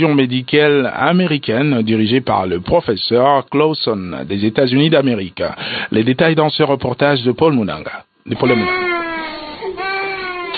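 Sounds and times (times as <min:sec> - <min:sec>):
speech: 0:00.0 - 0:09.0
young children crying after surgery: 0:08.4 - 0:10.5.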